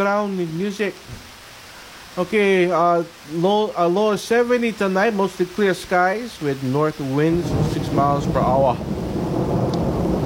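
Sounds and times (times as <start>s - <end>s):
speech: 0.0s - 1.3s, 2.2s - 9.5s
deep steady thunder rumbling: 7.0s - 10.2s.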